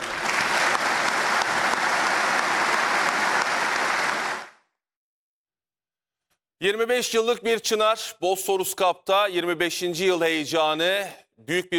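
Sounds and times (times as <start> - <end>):
audience applauding in a hall at a Veterans' Day ceremony: 0.0 - 4.6
speech: 6.6 - 11.7.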